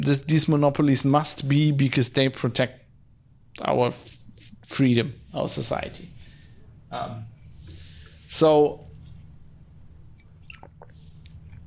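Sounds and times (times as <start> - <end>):
speech: 0.0 - 2.8, 3.6 - 6.2, 6.9 - 7.3, 8.3 - 8.8
steady low hum: 0.0 - 11.6
person drinking and swallowing water: 10.1 - 11.6.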